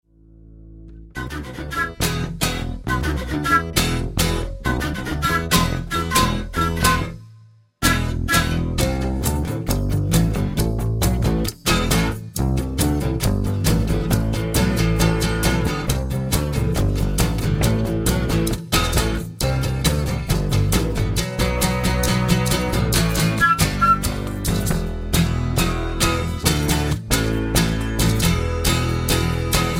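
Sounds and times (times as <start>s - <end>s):
bass: 0.0s - 29.7s
acoustic guitar: 0.1s - 29.7s
flute: 1.2s - 8.9s, 23.3s - 24.3s.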